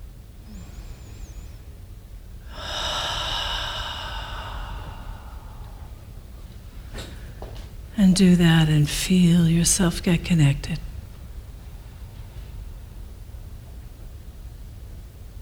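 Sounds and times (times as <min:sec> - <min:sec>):
long deep abdominal breath during a guided relaxation exercise: 0:00.4 - 0:01.7, 0:02.4 - 0:07.5
speech: 0:08.0 - 0:10.9.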